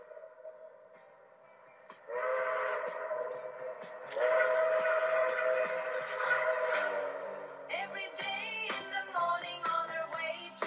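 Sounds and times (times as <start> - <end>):
rhythmic clatter of train wheels rolling along the track: 0.0 - 10.6
train whistle blasts: 2.0 - 7.7.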